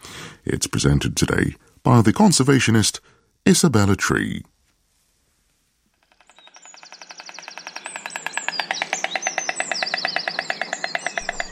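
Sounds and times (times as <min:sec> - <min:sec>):
speech: 0:00.5 - 0:04.5
small birds chirping: 0:06.0 - 0:11.4
white stork bill clattering: 0:07.0 - 0:11.4.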